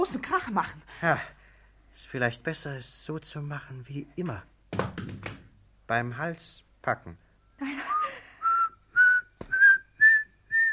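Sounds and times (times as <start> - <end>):
speech: 0.0 - 1.4, 2.0 - 5.2, 5.9 - 8.2
human whistling short clear notes: 7.8 - 10.7.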